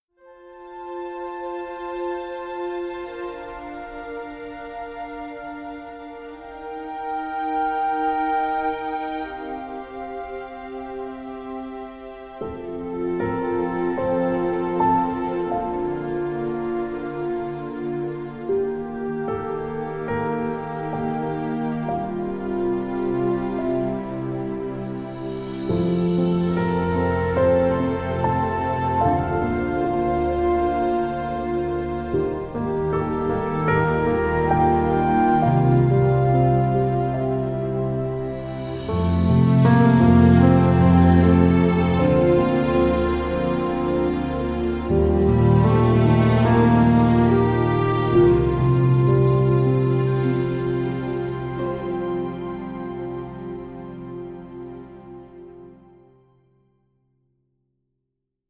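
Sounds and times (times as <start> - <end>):
soft touching romantic orchestral music: 0.0 - 56.8.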